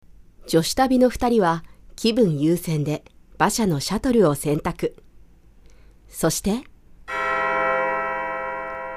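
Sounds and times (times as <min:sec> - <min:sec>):
speech: 0:00.5 - 0:05.0, 0:06.1 - 0:06.7
abbey church bell strike: 0:07.1 - 0:08.9.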